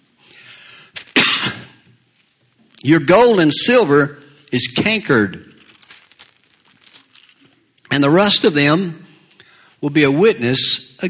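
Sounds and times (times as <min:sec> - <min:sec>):
person coughing: 0:01.2 - 0:01.8
speech: 0:02.8 - 0:05.5, 0:08.0 - 0:09.0, 0:09.8 - 0:11.0.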